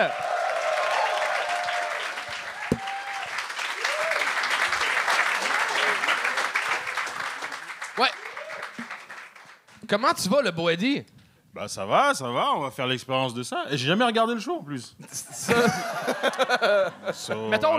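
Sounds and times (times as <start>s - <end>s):
speech: 0.0s - 0.2s, 8.0s - 8.2s, 9.9s - 17.7s
crowd cheering and whooping: 0.0s - 7.1s, 8.2s - 8.8s
large crowd applauding at a stand-up comedy competition: 0.0s - 9.8s
laughter: 15.0s - 17.7s.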